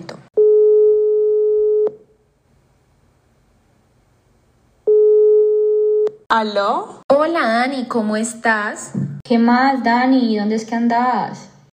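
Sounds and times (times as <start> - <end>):
telephone ringback tone while a call connects: 0.4 - 2.0, 4.9 - 6.1
speech: 6.3 - 11.5.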